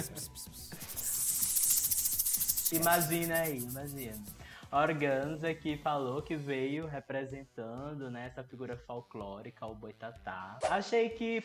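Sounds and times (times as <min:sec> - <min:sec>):
voice imitating a snake's hiss: 0:00.0 - 0:04.4
speech: 0:02.7 - 0:11.4.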